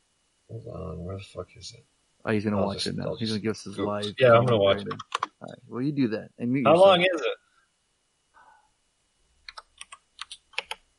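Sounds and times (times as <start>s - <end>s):
speech: 0.5s - 7.4s
typing on a computer keyboard: 9.5s - 10.8s.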